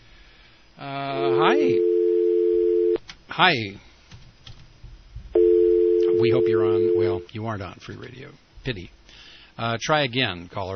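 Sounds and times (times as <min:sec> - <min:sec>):
speech: 0:00.8 - 0:01.9, 0:03.4 - 0:03.9, 0:06.2 - 0:10.7
steady telephone line tone from a call failing to connect: 0:01.2 - 0:03.0, 0:05.4 - 0:07.2.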